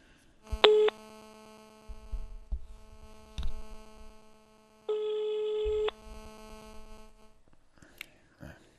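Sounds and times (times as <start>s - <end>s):
steady electrical hum: 0.0s - 8.7s
ringback tone of an unanswered outgoing telephone call: 0.6s - 1.0s, 4.9s - 6.0s.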